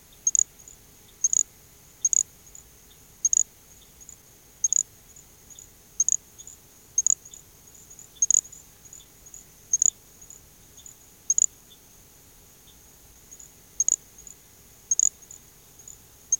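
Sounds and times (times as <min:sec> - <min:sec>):
faint steady hiss: 0:00.0 - 0:16.3
little grass frog giving very high thin insect-like chirps: 0:00.2 - 0:00.5, 0:01.2 - 0:02.3, 0:03.2 - 0:03.4, 0:04.6 - 0:04.8, 0:06.0 - 0:06.2, 0:07.0 - 0:07.2, 0:08.2 - 0:08.5, 0:09.7 - 0:10.0, 0:13.8 - 0:14.0, 0:14.9 - 0:15.2.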